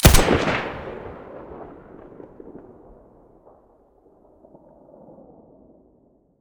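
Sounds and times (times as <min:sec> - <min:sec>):
SA58 rifle muzzle blast: 0:00.0 - 0:02.0.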